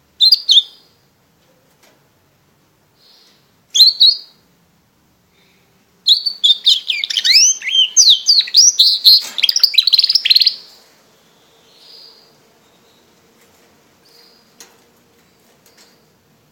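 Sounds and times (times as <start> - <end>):
Border canary singing: 0.1 - 1.1, 3.0 - 4.5, 5.4 - 16.4.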